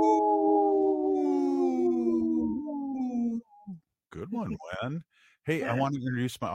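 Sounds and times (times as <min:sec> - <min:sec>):
person imitating a wolf howl: 0:00.0 - 0:03.8
speech: 0:04.3 - 0:06.5.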